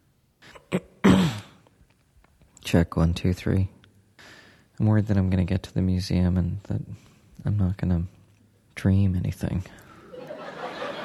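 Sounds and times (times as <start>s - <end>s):
man coughing with rough hacking cough: 0.4s - 1.6s
speech: 2.7s - 3.8s, 4.8s - 8.2s, 8.8s - 9.8s
laughter: 10.0s - 11.0s.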